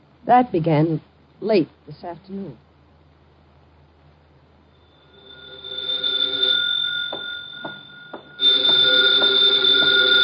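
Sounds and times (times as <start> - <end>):
speech: 0.3 - 2.7
shrill telephone bell ringing: 4.8 - 10.2.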